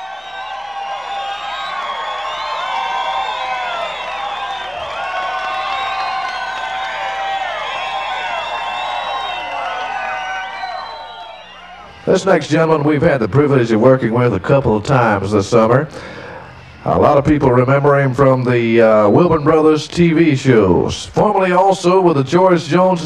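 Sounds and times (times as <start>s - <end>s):
large crowd cheering and whooping: 0.0s - 12.2s
audience clapping: 1.8s - 11.3s
speech: 12.1s - 16.2s, 16.8s - 23.0s.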